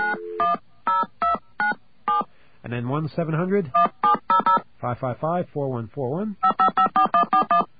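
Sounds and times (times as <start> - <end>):
telephone keypad tones dialing a carrier access code: 0.0 - 2.3, 3.8 - 4.6, 6.4 - 7.7
speech: 2.7 - 4.0, 4.8 - 6.5.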